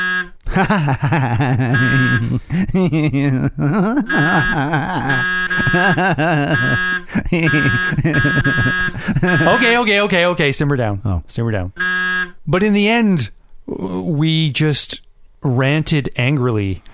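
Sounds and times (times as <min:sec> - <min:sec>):
loud electronic buzzer tones: 0:00.0 - 0:00.4, 0:01.7 - 0:02.3, 0:04.1 - 0:09.9, 0:11.8 - 0:12.4
laughter: 0:00.5 - 0:09.9
speech: 0:00.6 - 0:16.9.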